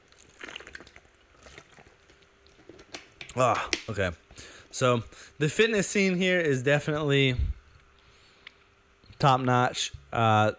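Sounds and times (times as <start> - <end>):
person sipping drinking water: 0.0 - 3.0
faint hiss: 0.0 - 10.5
speech: 3.4 - 7.6, 9.2 - 10.5.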